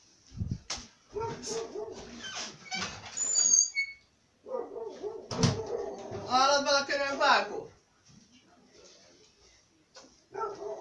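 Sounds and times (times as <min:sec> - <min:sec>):
dog barking during a rural pig slaughter: 0:01.1 - 0:02.1, 0:04.4 - 0:06.3, 0:10.3 - 0:10.7
speech: 0:01.4 - 0:02.9, 0:06.3 - 0:07.7.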